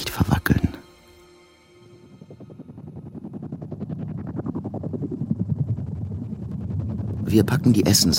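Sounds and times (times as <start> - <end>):
rotors of waiting helicopters whirling: 1.6 - 8.1
speech: 7.3 - 8.1.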